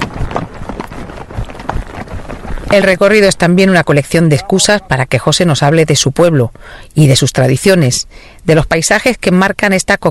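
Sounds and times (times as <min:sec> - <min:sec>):
wind noise: 0:00.0 - 0:04.6
horse trotting under a rider: 0:00.0 - 0:05.1
speech: 0:02.7 - 0:10.0.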